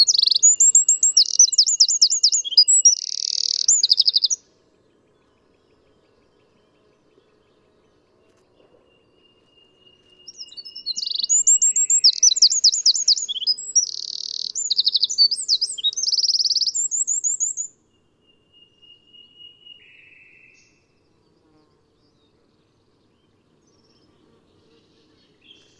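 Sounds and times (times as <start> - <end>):
Eurasian wren Troglodytes troglodytes singing shrill twitters and trills: 0.0 - 4.4, 10.1 - 17.8.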